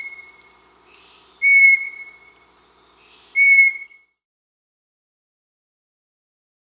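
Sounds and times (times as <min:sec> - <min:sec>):
Bartlett's tinamou Crypturellus bartletti whistles in the Amazon, Peru: 0:01.4 - 0:02.2, 0:03.4 - 0:04.0.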